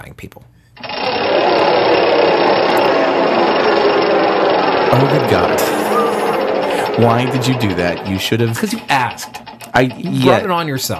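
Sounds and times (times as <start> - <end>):
speech: 0.0 - 1.4, 4.9 - 5.9, 7.0 - 10.9
wheel spinning noisily: 0.8 - 10.6.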